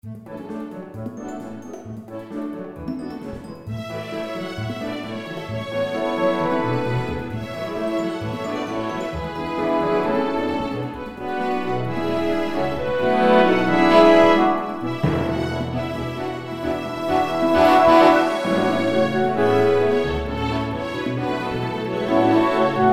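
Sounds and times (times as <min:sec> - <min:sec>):
full orchestra: 0:00.2 - 0:22.9.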